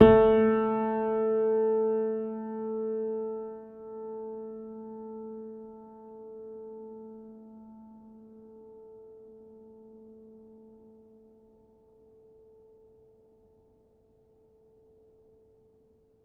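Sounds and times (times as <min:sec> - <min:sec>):
upright piano playing: 0:00.0 - 0:05.9.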